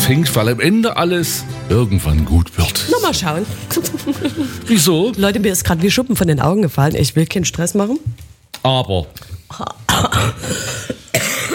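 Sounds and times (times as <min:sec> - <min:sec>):
speech: 0:00.1 - 0:10.9
laughter: 0:03.4 - 0:05.1
person coughing: 0:09.5 - 0:11.5.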